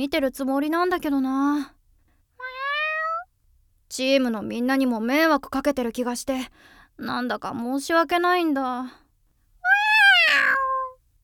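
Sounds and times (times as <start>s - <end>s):
speech: 0.0s - 1.8s, 3.9s - 9.0s
cat meowing: 2.4s - 3.3s, 9.6s - 11.0s.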